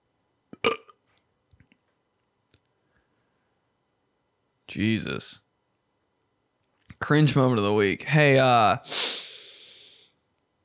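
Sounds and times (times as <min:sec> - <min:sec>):
loud burp: 0:00.6 - 0:01.0
speech: 0:04.7 - 0:05.4, 0:07.0 - 0:09.2.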